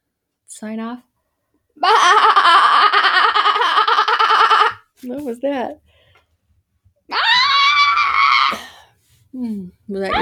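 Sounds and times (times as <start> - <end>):
speech: 0.6 - 1.1, 5.0 - 5.9, 9.4 - 10.2
person imitating a screaming goat: 1.8 - 4.8, 7.1 - 8.6.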